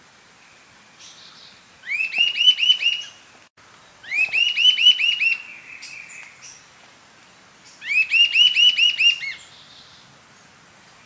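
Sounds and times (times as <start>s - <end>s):
Sirystes sibilator sibilator sibilant sirystes whistled calls: 1.0s - 3.2s, 4.0s - 6.6s, 7.7s - 10.0s.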